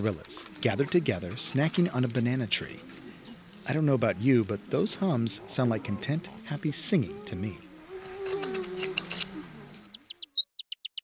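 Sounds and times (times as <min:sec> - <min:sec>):
speech: 0:00.0 - 0:03.0, 0:03.7 - 0:07.7
bat chirping while calling to a mate: 0:09.8 - 0:11.0.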